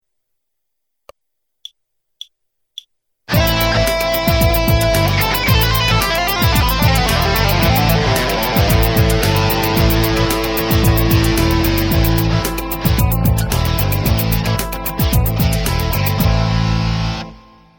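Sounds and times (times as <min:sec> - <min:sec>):
guitar lick: 0:03.3 - 0:17.5.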